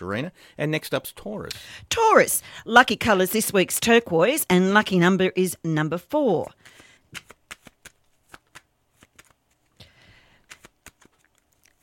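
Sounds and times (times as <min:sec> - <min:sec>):
speech: 0:00.0 - 0:07.4
flower oracle cards being shuffled: 0:06.7 - 0:11.8.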